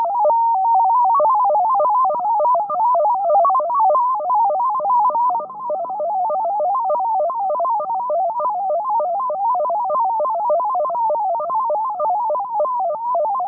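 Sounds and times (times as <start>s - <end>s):
MFSK-20 AM end of message digital radio data tones: 0.0s - 13.4s.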